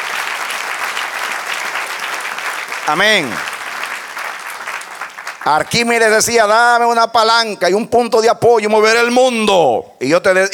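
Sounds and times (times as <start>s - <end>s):
church congregation applauding: 0.0s - 7.0s
speech: 2.9s - 3.5s, 5.4s - 10.5s.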